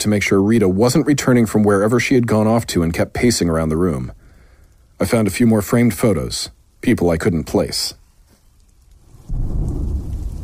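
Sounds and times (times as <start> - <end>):
speech: 0.0 - 4.2, 5.0 - 8.0, 9.3 - 9.9
heavy rain downpour: 0.0 - 10.4
deep loud thunder rumbling: 9.0 - 10.4.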